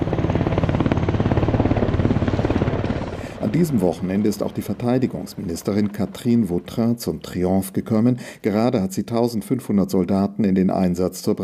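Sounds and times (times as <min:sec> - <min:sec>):
helicopter rotor chopping during a military demonstration of tanks and helicopters: 0:00.0 - 0:07.7
speech: 0:03.6 - 0:11.4.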